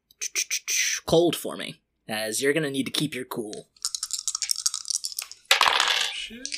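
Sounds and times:
speech: 1.1s - 3.8s, 6.3s - 6.5s
dice rolling on a table: 3.8s - 6.5s.

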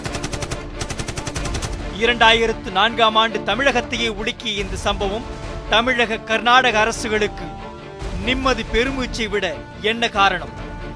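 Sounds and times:
automatic weapon rapid-fire gunfire: 0.0s - 1.9s
speech: 2.0s - 7.6s, 8.2s - 10.6s.

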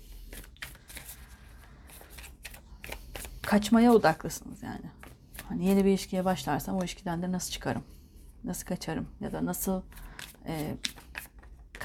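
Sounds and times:
playing cards shuffled and drawn during a card reading: 0.1s - 4.1s, 9.9s - 11.8s
speech: 3.5s - 10.9s.

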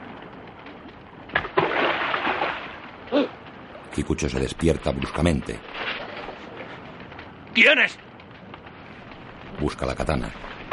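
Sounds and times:
stone thrown into a river splashing: 1.4s - 2.8s
speech: 3.1s - 3.4s, 4.0s - 6.0s, 7.6s - 8.0s, 9.6s - 10.5s.

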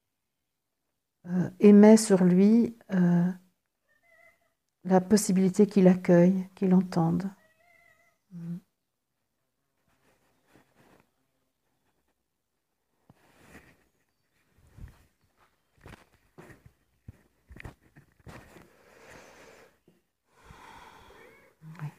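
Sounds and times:
speech: 1.2s - 3.4s, 4.8s - 7.4s, 8.3s - 8.6s
light rustling and shuffling movement of a cat: 9.2s - 19.4s
cat breathing and snuffling around the microphone: 18.5s - 21.9s.

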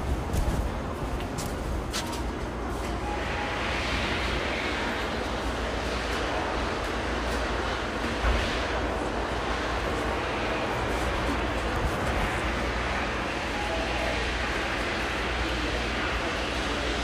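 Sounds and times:
faint voices: 0.0s - 17.0s
traffic and engine rumble at a gas station: 0.0s - 17.0s.

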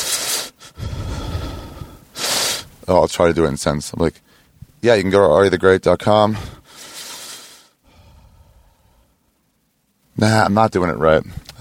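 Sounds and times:
person breathing in a deliberately creepy way: 0.0s - 2.6s, 6.4s - 9.2s
speech: 2.9s - 6.6s, 10.2s - 11.6s.

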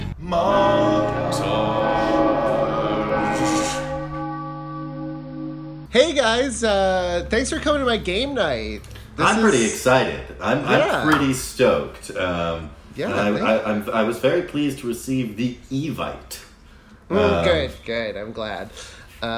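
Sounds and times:
dense sustained chord of droning tones: 0.2s - 5.9s
mournful tolling bell dirge sound effect: 0.4s - 5.9s
speech: 6.2s - 16.5s, 17.1s - 19.3s.

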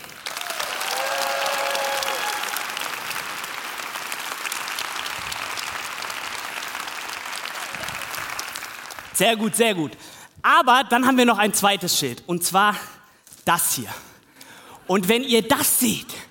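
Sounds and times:
audience applause: 0.0s - 9.2s
faint cheers: 0.3s - 3.1s
speech: 9.2s - 12.9s, 13.5s - 14.1s, 14.9s - 16.2s.

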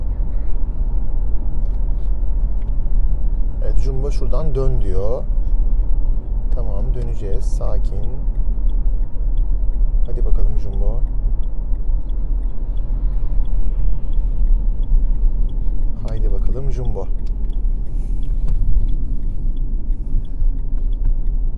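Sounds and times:
car engine rumble while driving: 0.0s - 21.5s
road noise: 0.0s - 21.5s
speech: 3.8s - 5.4s, 6.6s - 8.3s, 10.1s - 11.1s, 16.1s - 17.3s.

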